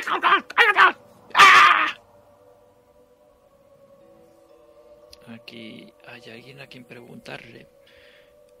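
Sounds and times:
man shouting in pain: 0:00.0 - 0:02.0
speech: 0:00.1 - 0:02.0, 0:05.3 - 0:07.8.

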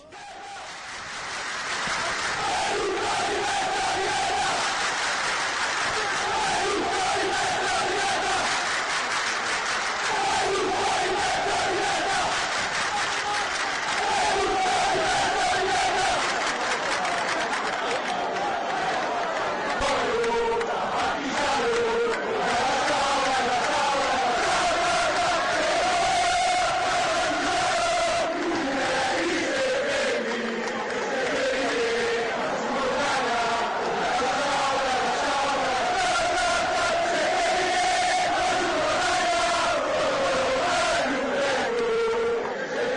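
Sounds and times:
large crowd of football supporters chanting protest songs in a stadium: 0:00.0 - 0:42.9.

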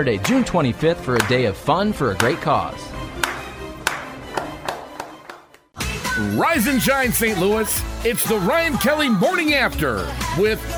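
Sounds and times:
speech: 0:00.0 - 0:03.0, 0:06.2 - 0:10.7
slow sharp hand claps: 0:03.2 - 0:05.6.

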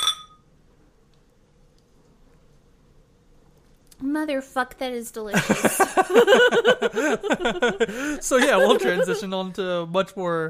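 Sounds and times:
glasses of dark imperial stout with espresso clinking in a toast: 0:00.0 - 0:00.4
low quiet hum: 0:00.0 - 0:10.4
speech: 0:04.0 - 0:10.4
laughter: 0:05.4 - 0:09.4.

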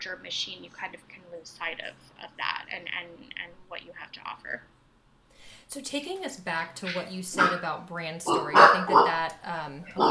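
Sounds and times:
speech: 0:00.0 - 0:04.8, 0:05.7 - 0:10.1
dog barking in the background: 0:06.9 - 0:07.6, 0:08.3 - 0:09.2.

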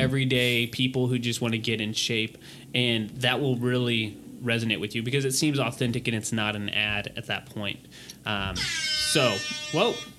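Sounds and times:
speech: 0:00.0 - 0:10.1
brassy rap air horn sound effect: 0:08.4 - 0:10.1.

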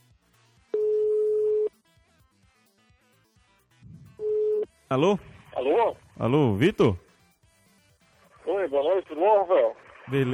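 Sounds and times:
electronic telephone tone as a call is dialed: 0:00.8 - 0:01.7, 0:04.2 - 0:04.7
speech: 0:04.9 - 0:07.0, 0:08.7 - 0:10.3.

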